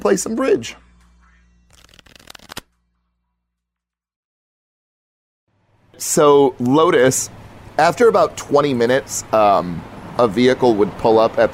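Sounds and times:
speech: 0.0s - 0.9s, 6.0s - 11.5s
deck of playing cards riffle shuffled: 1.7s - 2.8s.

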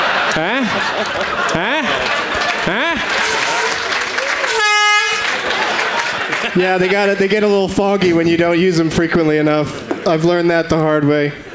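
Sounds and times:
laughter: 0.0s - 8.4s
chattering background: 0.0s - 11.5s
speech: 0.4s - 3.5s, 6.6s - 11.5s
air horn blast: 2.7s - 5.4s.

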